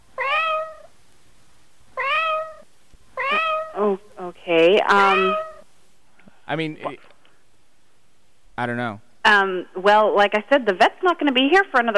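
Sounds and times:
cat making strained choking cries: 0:00.2 - 0:00.9, 0:02.0 - 0:03.8, 0:04.9 - 0:05.6
speech: 0:03.8 - 0:05.4, 0:06.5 - 0:07.1, 0:08.6 - 0:11.9.

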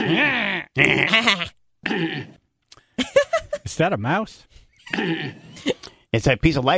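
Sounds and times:
man choking and hacking during a speech: 0:00.0 - 0:02.5, 0:04.9 - 0:06.0
speech: 0:00.1 - 0:01.5, 0:03.8 - 0:06.7.

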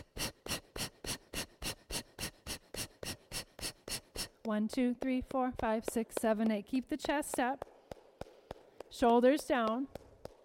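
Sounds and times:
fast forceful belly-pumping breaths in a breathing exercise: 0:00.0 - 0:04.4
speech: 0:04.4 - 0:07.7, 0:09.0 - 0:10.0.

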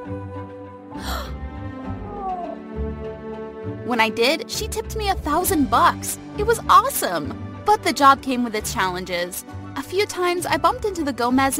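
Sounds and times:
cat meowing: 0:01.9 - 0:02.7
speech: 0:03.9 - 0:11.5.

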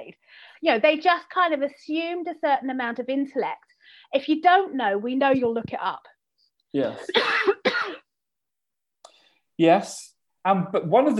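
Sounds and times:
speech: 0:00.6 - 0:06.1, 0:06.7 - 0:07.5, 0:09.6 - 0:11.1
person coughing while drinking: 0:07.0 - 0:08.1.

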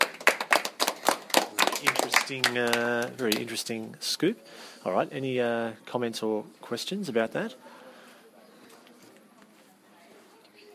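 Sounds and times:
small audience clapping for a speaker after a talk about brain science: 0:00.0 - 0:03.6
speech: 0:01.8 - 0:07.8.

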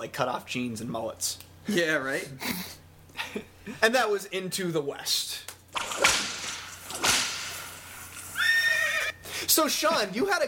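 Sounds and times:
speech: 0:00.0 - 0:06.1, 0:09.6 - 0:10.4
whip cracks: 0:05.7 - 0:08.3
horse whinnying: 0:08.2 - 0:09.2.

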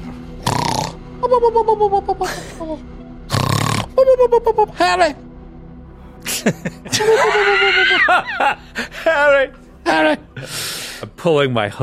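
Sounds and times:
person loudly imitating snoring: 0:00.4 - 0:01.0, 0:03.3 - 0:04.2
laughter: 0:01.2 - 0:02.8, 0:06.2 - 0:10.5
speech: 0:01.2 - 0:03.0, 0:04.0 - 0:05.2, 0:06.2 - 0:11.8.

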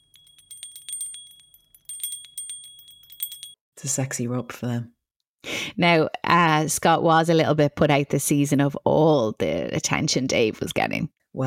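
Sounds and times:
hand bell ringing: 0:00.0 - 0:03.6
speech: 0:03.8 - 0:05.0, 0:05.8 - 0:11.4.

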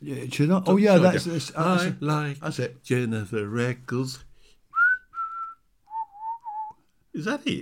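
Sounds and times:
speech: 0:00.0 - 0:04.3, 0:07.2 - 0:07.5
person whistling a tune: 0:04.7 - 0:06.9.

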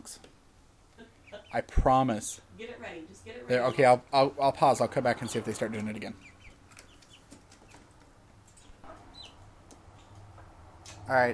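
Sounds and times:
steady low hum: 0:00.0 - 0:11.3
baby chicks peeping: 0:01.0 - 0:01.8, 0:05.1 - 0:11.0
speech: 0:01.5 - 0:06.3, 0:11.1 - 0:11.3.

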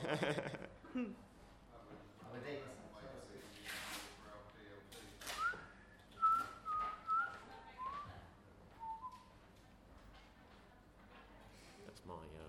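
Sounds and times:
laughter: 0:00.0 - 0:01.2
speech: 0:00.1 - 0:01.3, 0:02.3 - 0:02.8
person whistling: 0:05.4 - 0:08.1, 0:08.8 - 0:09.3.

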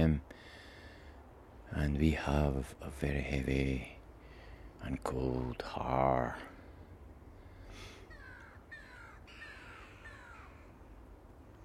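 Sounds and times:
steady low rumble of noise: 0:00.0 - 0:11.6
speech: 0:01.7 - 0:04.0, 0:04.8 - 0:06.5
crows cawing on a foggy morning: 0:07.5 - 0:10.8.

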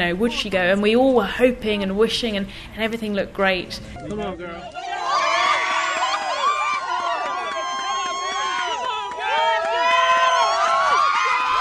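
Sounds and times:
speech: 0:00.0 - 0:04.9
crowd screaming, whooping and shouting at a space shuttle launch: 0:04.6 - 0:11.5.

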